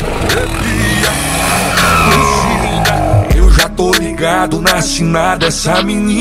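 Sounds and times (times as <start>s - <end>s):
pickup truck engine revving: 0.0s - 4.0s
speech: 4.2s - 6.1s.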